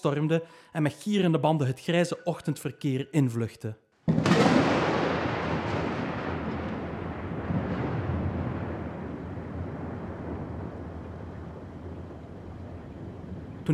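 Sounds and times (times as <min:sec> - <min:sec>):
speech: 0:00.0 - 0:04.3
thunderclap with long rolling rumble: 0:04.1 - 0:13.7.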